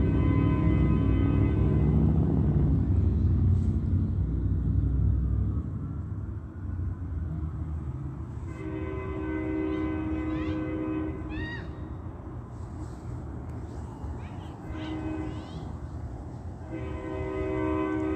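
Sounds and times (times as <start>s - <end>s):
train horn: 0.0s - 2.7s, 8.4s - 11.6s, 14.6s - 15.6s, 16.6s - 18.1s
train passing: 0.0s - 18.1s.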